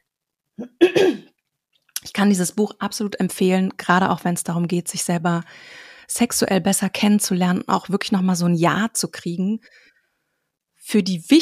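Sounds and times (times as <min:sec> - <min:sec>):
person clearing throat with a low grunt and rough rasp: 0:00.6 - 0:01.3
speech: 0:02.2 - 0:09.9, 0:10.9 - 0:11.4.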